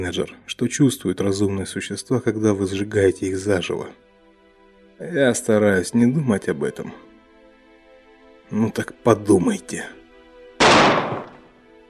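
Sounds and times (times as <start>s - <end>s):
speech: 0.0s - 4.1s, 5.0s - 7.1s, 8.5s - 10.0s
gunshot: 10.6s - 11.5s.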